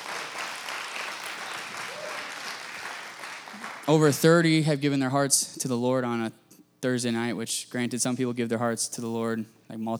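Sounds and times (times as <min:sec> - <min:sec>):
crowd applauding in a room: 0:00.0 - 0:04.4
speech: 0:03.9 - 0:09.9.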